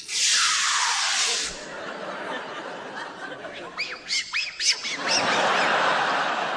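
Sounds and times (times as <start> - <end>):
aerosol polish being sprayed: 0.0 - 1.7
laughter: 1.3 - 6.5.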